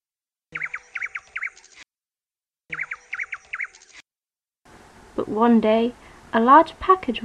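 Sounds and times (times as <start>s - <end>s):
nightingale singing warbled phrases: 0.5s - 1.8s, 2.7s - 4.0s
faint noisy background: 4.7s - 7.2s
speech: 5.2s - 7.2s.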